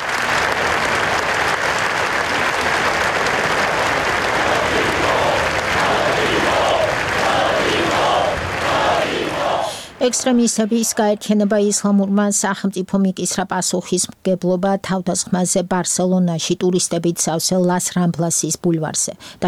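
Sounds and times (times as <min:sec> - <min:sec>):
gathered crowd applauding: 0:00.0 - 0:10.7
gathered crowd chanting rhythmic shouts: 0:03.1 - 0:10.4
speech: 0:10.0 - 0:19.4.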